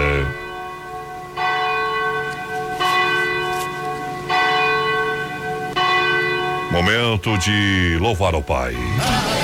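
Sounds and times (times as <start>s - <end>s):
large cathedral bell tolling at night in Brazil: 0.0s - 9.2s
speech: 6.8s - 9.3s.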